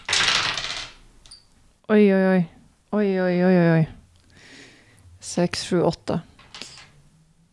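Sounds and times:
dice rolled for damage in a game tumbling across a hard tabletop: 0.0s - 1.0s, 6.4s - 6.9s
speech: 1.9s - 4.0s, 5.2s - 6.3s.

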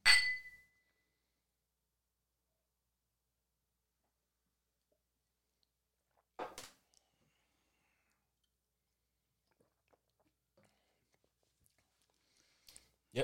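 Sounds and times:
glasses clinking in a toast: 0.0s - 0.6s
faint small sounds: 0.4s - 13.2s.

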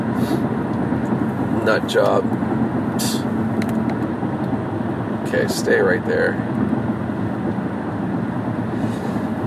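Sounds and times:
road traffic passing with a low rumble: 0.0s - 9.4s
speech: 1.6s - 3.2s, 5.3s - 6.6s.

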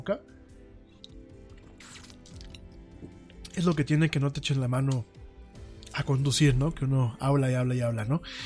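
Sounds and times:
speech: 0.0s - 0.4s, 3.6s - 5.2s, 6.0s - 8.4s
person sipping water: 1.0s - 3.6s.

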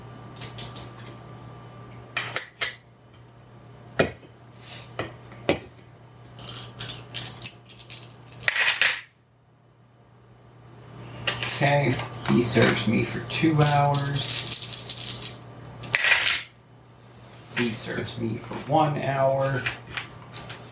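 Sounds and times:
faint hum: 0.0s - 20.6s
dice clattering as they are scooped up and rolled: 0.4s - 1.1s, 6.4s - 9.0s, 13.6s - 16.5s
speech: 11.6s - 14.4s, 17.6s - 19.9s.

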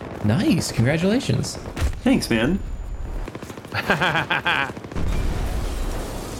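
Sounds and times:
speech: 0.2s - 2.8s, 3.7s - 4.8s
laughter: 3.7s - 4.8s
explosion blowing up part of a building in a video game: 5.0s - 6.3s.

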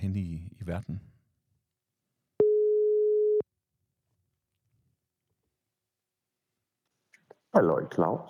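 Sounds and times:
speech: 0.0s - 1.1s, 7.6s - 8.2s
outgoing phone call ringback tone through an audio mixer: 2.4s - 3.4s.

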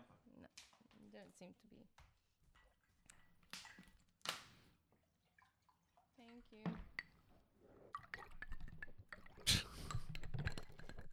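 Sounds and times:
speech: 1.2s - 2.1s, 6.2s - 8.4s
water pouring into a glass: 6.8s - 11.1s.

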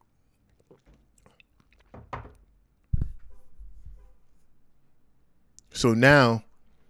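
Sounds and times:
person sipping a drink with mouth clicks and a slurp: 0.4s - 1.9s
speech: 0.7s - 1.1s, 5.8s - 6.5s
cup set down with a solid thunk: 1.8s - 2.5s.

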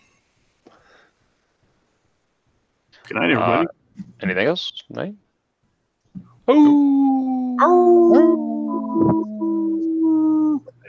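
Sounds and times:
speech: 3.1s - 5.2s, 6.2s - 8.4s
people howling like dogs: 6.5s - 10.7s
person yipping: 6.5s - 10.7s.

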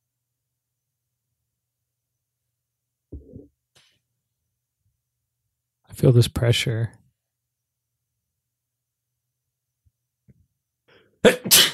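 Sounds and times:
speech: 6.0s - 7.0s
person sneezing: 11.2s - 11.7s.

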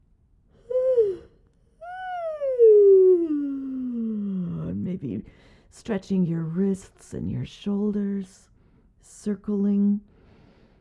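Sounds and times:
human yawn: 0.6s - 4.6s
speech: 5.7s - 8.5s, 9.1s - 10.1s.

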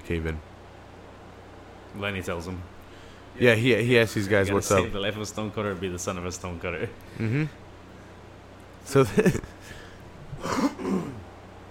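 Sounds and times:
speech: 0.1s - 0.5s, 1.9s - 2.8s, 3.4s - 7.6s, 8.8s - 9.4s
person clearing throat: 7.2s - 7.6s, 10.3s - 11.3s.

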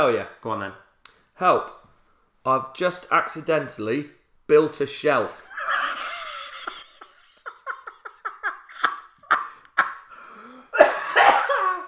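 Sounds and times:
speech: 0.0s - 0.8s, 1.4s - 1.8s, 2.4s - 5.8s
laughter: 5.5s - 10.1s
person having a coughing fit: 10.7s - 11.8s.

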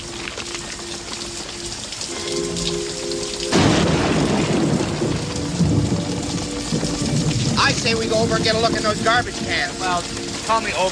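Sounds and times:
heavy rain at night: 0.0s - 10.9s
thunder crack and rumble: 3.5s - 10.6s
speech: 7.8s - 10.9s.

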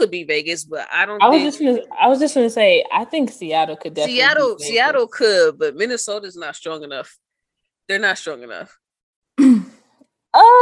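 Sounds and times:
speech: 0.0s - 7.2s, 7.9s - 8.8s, 9.4s - 9.7s, 10.3s - 10.6s
throat clearing: 9.4s - 9.8s.

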